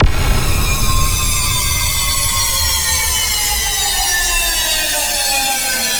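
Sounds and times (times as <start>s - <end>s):
deactivated impact: 0.0s - 5.9s.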